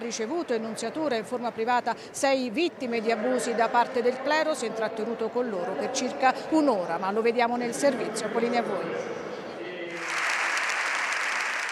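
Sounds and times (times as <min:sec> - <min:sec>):
murmur of voices: 0:00.0 - 0:10.1
speech: 0:00.1 - 0:09.4
large parliament audience applauding: 0:09.9 - 0:11.7.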